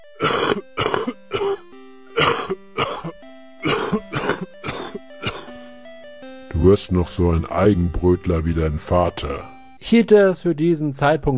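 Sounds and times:
man coughing harshly after drawing on a crack pipe: 0:00.2 - 0:05.6
speech: 0:06.6 - 0:11.3.

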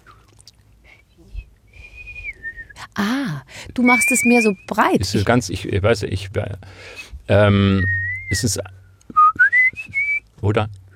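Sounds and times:
faint rumble: 0:00.0 - 0:10.9
person whistling with lips in an advanced style: 0:00.9 - 0:02.8, 0:07.6 - 0:08.5, 0:09.1 - 0:10.2
speech: 0:03.0 - 0:08.8, 0:10.4 - 0:10.8.

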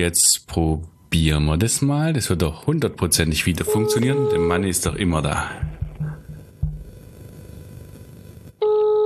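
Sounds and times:
speech: 0:00.0 - 0:05.8
steady electronic phone tone of a call being placed: 0:03.6 - 0:08.9.

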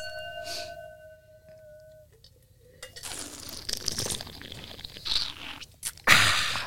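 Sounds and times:
glass ringing: 0:00.0 - 0:02.1
slurping wine during a wine tasting: 0:03.0 - 0:06.0.

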